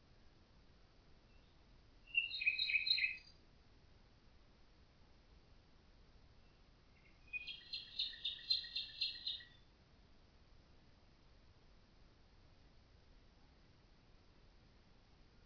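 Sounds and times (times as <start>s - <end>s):
common nightingale song: 1.2s - 3.5s, 6.3s - 9.8s.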